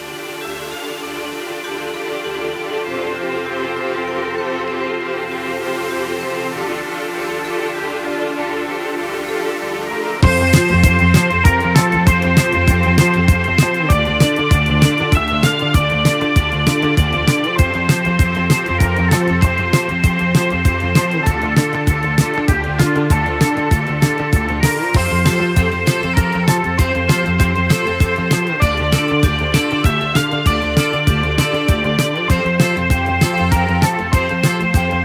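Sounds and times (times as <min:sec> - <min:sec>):
Italian pop song with driving beat, bright synth and bass: 0:00.0 - 0:35.0.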